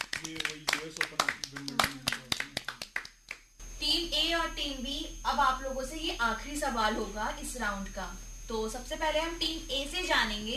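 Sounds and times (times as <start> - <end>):
scattered hand clapping from a small group: 0.0 - 3.5
speech: 0.2 - 2.0, 4.4 - 10.5.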